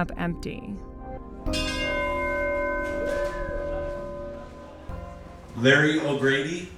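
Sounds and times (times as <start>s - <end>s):
speech: 0.0s - 1.7s, 5.6s - 6.7s
single deep memorial bell tolling for a fisherman who died at sea: 0.0s - 6.7s.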